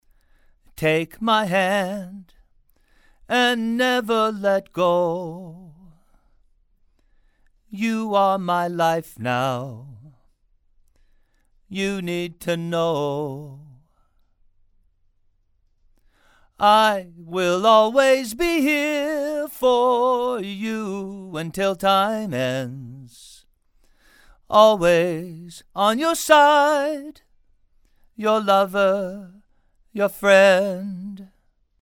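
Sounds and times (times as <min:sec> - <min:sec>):
male vocals: 0:00.7 - 0:02.5, 0:03.2 - 0:06.1, 0:07.7 - 0:10.4, 0:11.7 - 0:14.1, 0:16.5 - 0:23.5, 0:24.4 - 0:27.3, 0:28.2 - 0:31.4.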